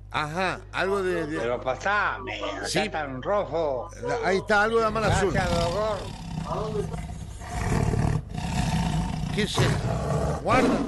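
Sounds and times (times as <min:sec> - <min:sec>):
constant noise: 0:00.0 - 0:10.8
speech: 0:00.1 - 0:07.0, 0:09.4 - 0:10.8
tiger roaring: 0:05.0 - 0:10.8.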